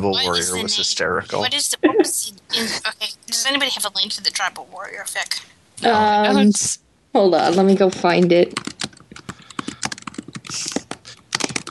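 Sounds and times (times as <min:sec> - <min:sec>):
speech: 0:00.0 - 0:08.7
typing on a computer keyboard: 0:08.5 - 0:11.6.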